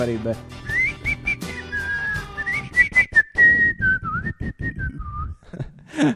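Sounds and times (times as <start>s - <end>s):
speech: 0.0s - 0.7s, 6.0s - 6.1s
person whistling a bouncy march-like tune at a dog: 0.6s - 5.4s.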